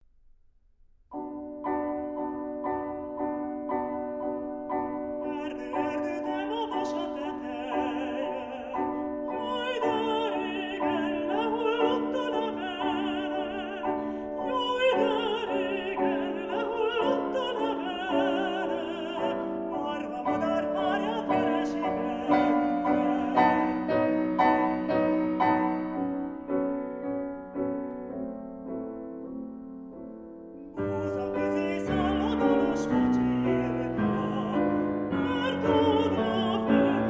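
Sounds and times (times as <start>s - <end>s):
piano: 0.0s - 37.0s
person singing a folk song: 5.0s - 24.6s, 30.6s - 37.0s.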